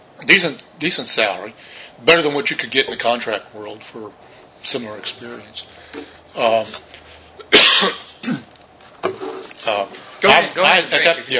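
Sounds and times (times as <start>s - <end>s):
speech: 0.2s - 7.0s, 7.8s - 8.5s, 9.6s - 11.3s
person coughing close to the microphone: 7.4s - 8.5s
throat clearing: 7.4s - 8.6s.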